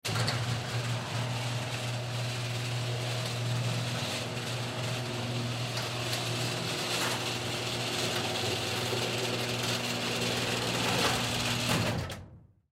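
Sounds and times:
automatic electric motor garage door closing: 0.0s - 12.5s.

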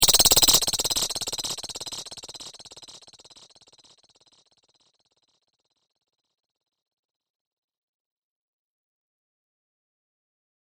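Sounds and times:
rattlesnake rattling: 0.0s - 1.1s.

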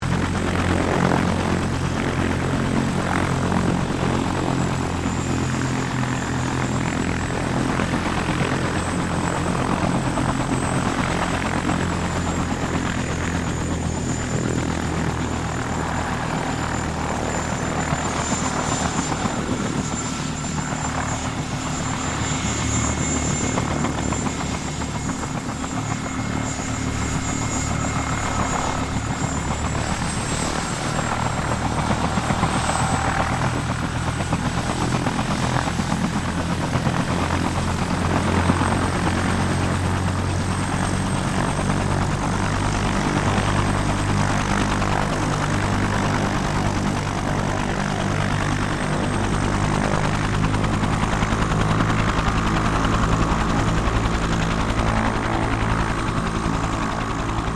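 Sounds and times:
1967 Bell UH1 Iroquios helicopter preflight: 0.0s - 57.5s.

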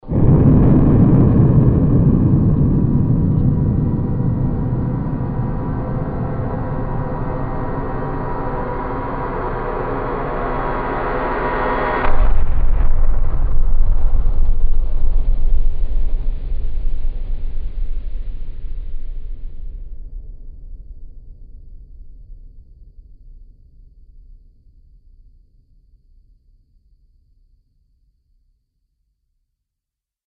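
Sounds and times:
sound design stinger: 0.0s - 18.4s.

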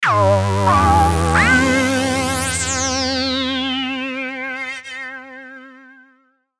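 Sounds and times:
distorted alien warble sonic logo: 0.0s - 4.3s.

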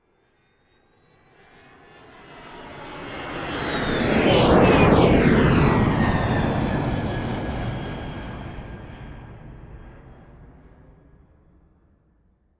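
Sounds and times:
military fighter jet flying by: 1.3s - 11.0s.

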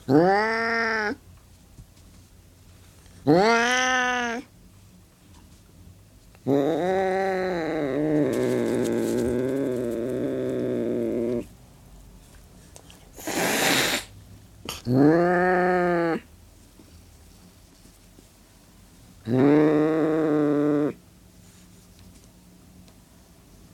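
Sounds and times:
Burmese cat hissing and growling: 0.0s - 1.2s, 3.2s - 4.5s, 6.4s - 11.5s, 13.1s - 16.3s, 19.2s - 21.0s
Burmese cat yowling: 0.1s - 1.2s, 3.3s - 4.5s, 6.5s - 11.4s, 14.9s - 16.3s, 19.3s - 21.0s.

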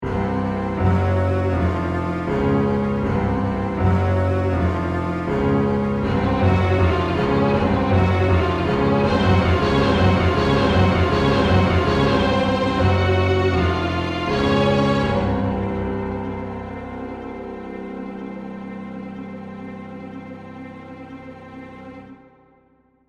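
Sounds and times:
dramatic creepy horror music composition: 0.0s - 22.8s.

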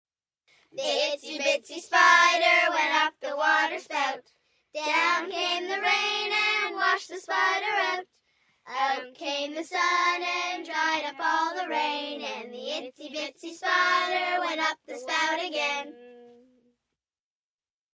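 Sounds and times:
group of six to ten children singing: 0.8s - 4.2s, 4.8s - 8.0s, 8.7s - 16.2s.

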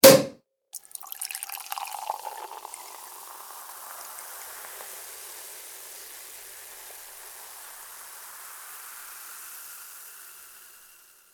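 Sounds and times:
champagne bottle cork popping open: 0.0s - 2.8s
champagne poured into a glass: 0.8s - 11.3s.

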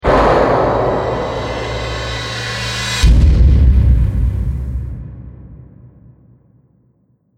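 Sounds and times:
stinger sound effect: 0.0s - 4.2s.

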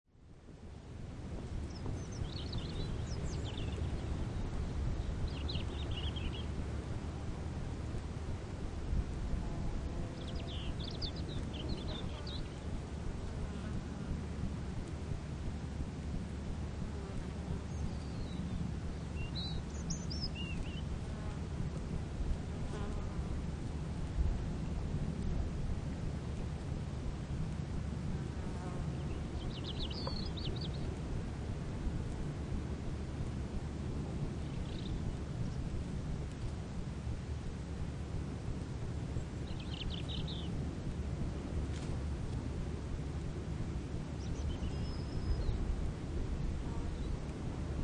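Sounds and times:
faint ocean: 0.1s - 47.8s
small birds tweeting by the sea: 1.5s - 6.6s, 10.0s - 12.8s, 17.5s - 21.0s, 28.6s - 31.0s, 34.4s - 35.7s, 39.2s - 40.6s, 44.1s - 45.7s, 46.8s - 47.2s.

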